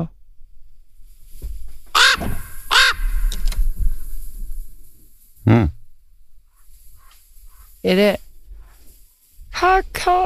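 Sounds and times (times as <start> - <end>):
harsh raven calls and croaks: 1.9 - 4.1, 6.4 - 7.9
speech: 7.8 - 8.2, 9.7 - 10.2.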